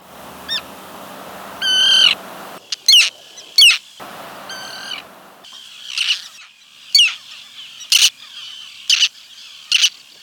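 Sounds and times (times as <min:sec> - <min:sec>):
Roseate Tern calling: 0:00.0 - 0:06.3.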